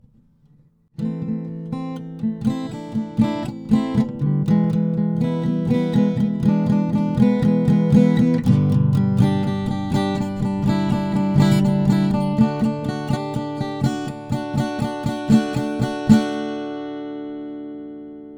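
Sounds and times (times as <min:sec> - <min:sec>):
acoustic guitar: 0:00.0 - 0:18.3.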